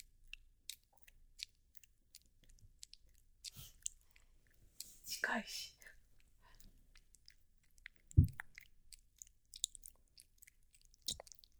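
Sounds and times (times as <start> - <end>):
chewing and biting on a thigh: 0.0 - 5.0, 6.2 - 11.5
speech: 5.3 - 5.7
dull thumps: 8.2 - 8.4.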